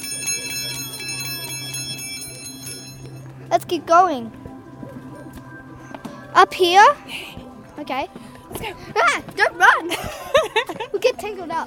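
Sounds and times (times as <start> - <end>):
small bell ringing in quick steady strikes: 0.0 - 3.3
speech: 3.6 - 4.4, 6.3 - 11.6.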